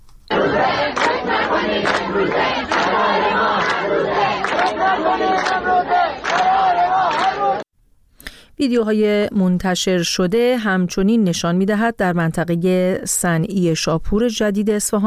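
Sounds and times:
students chanting protest slogans at a university: 0:00.3 - 0:07.7
speech: 0:08.6 - 0:15.0.

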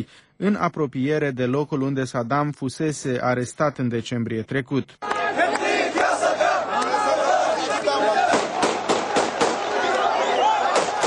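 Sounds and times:
speech: 0:00.0 - 0:05.6
large crowd shouting and chanting in unison: 0:05.0 - 0:11.0
gunshots fired into the air: 0:08.2 - 0:09.8, 0:10.6 - 0:11.0.

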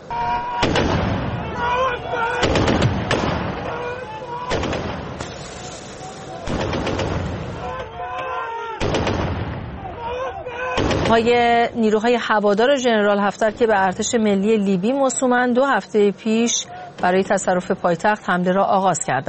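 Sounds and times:
voices and commotion: 0:00.0 - 0:19.2
heavier explosive thuds during city fighting: 0:00.6 - 0:01.4, 0:02.4 - 0:03.7, 0:06.5 - 0:07.7, 0:08.8 - 0:09.9
sharp bursts of gunfire during city fighting: 0:00.6 - 0:01.4, 0:02.3 - 0:07.7, 0:08.8 - 0:09.8, 0:10.8 - 0:11.4
speech: 0:11.1 - 0:19.2.

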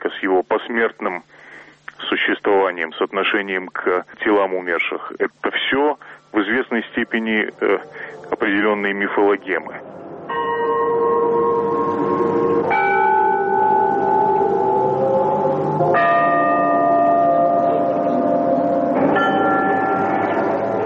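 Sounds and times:
speech: 0:00.1 - 0:09.9
church bells ringing: 0:10.2 - 0:20.8.

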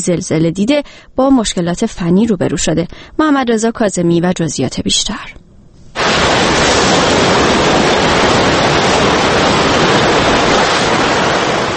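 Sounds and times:
speech: 0:00.0 - 0:05.4
tsunami floodwater rushing through town: 0:06.0 - 0:11.7.

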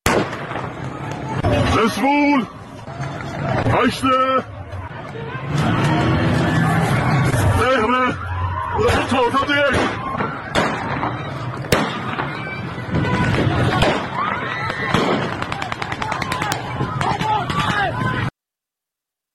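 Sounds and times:
gunshots during a street clash: 0:00.0 - 0:01.9, 0:08.9 - 0:17.9
large crowd shouting and chanting outdoors: 0:00.3 - 0:18.3
speech: 0:01.8 - 0:02.6, 0:03.4 - 0:04.6.

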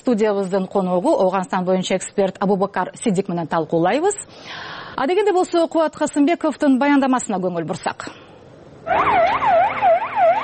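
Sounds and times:
speech: 0:00.0 - 0:08.2, 0:08.9 - 0:09.8
ambulance siren wailing: 0:08.8 - 0:10.4.

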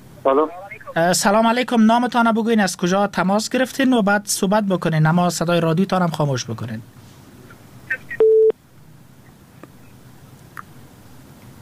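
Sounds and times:
speech: 0:00.2 - 0:07.0
telephone tone after a dropped call: 0:08.1 - 0:08.5.

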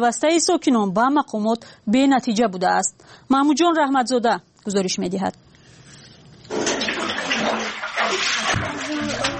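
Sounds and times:
speech: 0:00.0 - 0:05.5
water being bailed out by hand sloshing and splashing: 0:05.8 - 0:09.3.

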